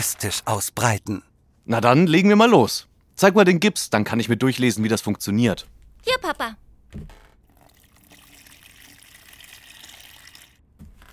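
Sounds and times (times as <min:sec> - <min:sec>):
speech: 0:00.0 - 0:07.2
water pouring into a bucket: 0:07.5 - 0:10.6.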